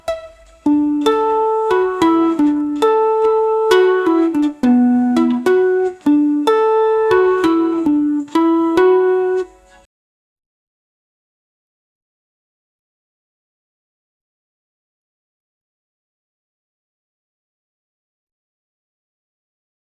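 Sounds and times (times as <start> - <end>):
warm acoustic family background music: 0.0 - 9.8.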